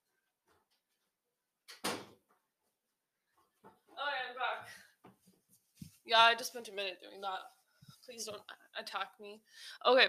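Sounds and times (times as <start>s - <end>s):
door swinging shut with a thud: 1.7s - 2.2s
speech: 6.1s - 10.0s.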